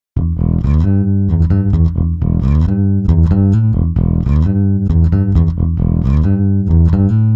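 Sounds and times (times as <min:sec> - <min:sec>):
time-stretched bass from i3 DSP Quattro X: 0:00.0 - 0:07.3.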